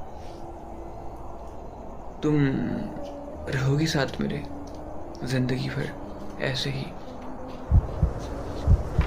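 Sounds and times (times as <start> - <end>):
speech: 2.2 - 4.6, 5.2 - 7.0
deep heartbeat lub-dub thumps: 7.5 - 9.0.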